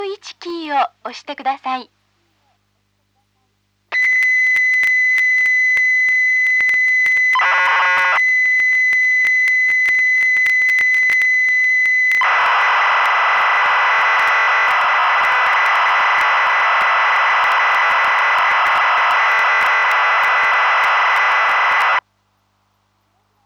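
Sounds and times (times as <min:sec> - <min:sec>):
speech: 0:00.7 - 0:02.0
Famicom BASIC program data loading from cassette tape: 0:04.0 - 0:22.0
high pilot tone: 0:04.0 - 0:22.0.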